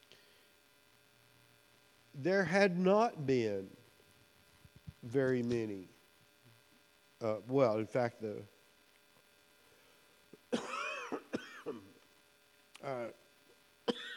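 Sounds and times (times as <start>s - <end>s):
faint steady electrical hum: 0.0s - 14.1s
speech: 2.2s - 3.8s, 5.0s - 6.0s, 7.2s - 8.5s
harsh throaty coughing: 10.5s - 11.9s, 13.9s - 14.1s.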